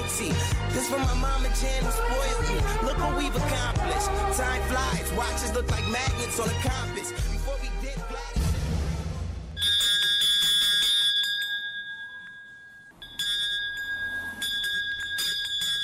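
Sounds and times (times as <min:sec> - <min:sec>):
speech: 0:00.2 - 0:08.3
bright bells ringing: 0:09.6 - 0:15.8.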